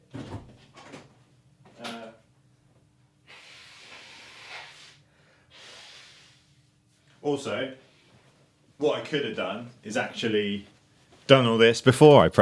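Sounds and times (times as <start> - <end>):
person blowing their nose: 3.2 - 6.7
person sniffing: 3.2 - 6.7
speech: 7.2 - 7.8, 8.8 - 10.7, 11.3 - 12.4.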